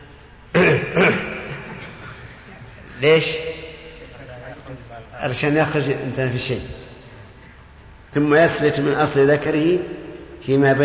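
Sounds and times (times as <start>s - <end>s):
person clearing throat: 0.5s - 2.6s
laughter: 1.2s - 3.1s
speech: 3.0s - 3.5s, 5.2s - 6.8s, 8.1s - 10.8s.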